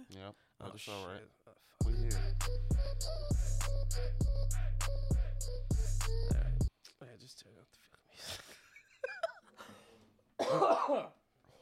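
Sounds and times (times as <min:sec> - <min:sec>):
speech: 0:00.1 - 0:11.2
person coughing harshly: 0:10.4 - 0:11.2.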